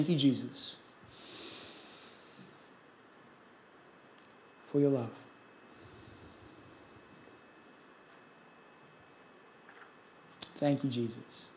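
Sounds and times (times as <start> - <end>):
speech: 0.0 - 0.8, 4.7 - 5.2, 10.6 - 11.5
slow audible exhale: 1.1 - 2.7, 5.7 - 7.2.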